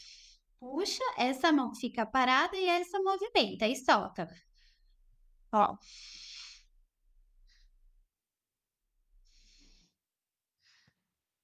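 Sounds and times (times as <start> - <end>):
slow diaphragmatic breathing with long airy inhale and breathy exhale: 0.0 - 0.6, 4.4 - 5.2, 5.8 - 8.0, 9.1 - 10.0, 10.6 - 11.2
speech: 0.6 - 4.5, 5.5 - 6.2.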